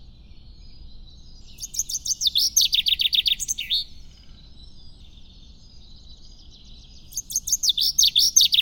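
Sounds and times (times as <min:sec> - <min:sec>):
common chaffinch song: 0:00.0 - 0:08.6.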